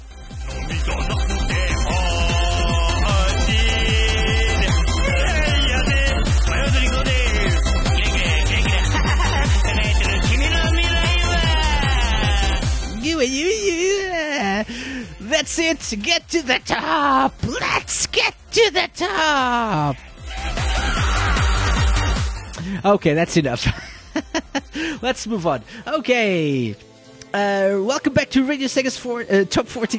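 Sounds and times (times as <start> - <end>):
upbeat backing track with pounding beat: 0.0 - 29.9
video game character singing: 0.5 - 14.6
laughter: 8.0 - 12.5, 19.9 - 22.8, 23.6 - 24.8
speech: 15.4 - 20.1, 22.7 - 24.3, 25.0 - 29.9.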